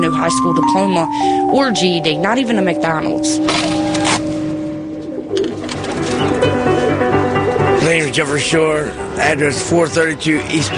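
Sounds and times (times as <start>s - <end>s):
speech: 0.2s - 3.8s, 8.1s - 10.7s
pigeons cooing: 3.4s - 7.0s.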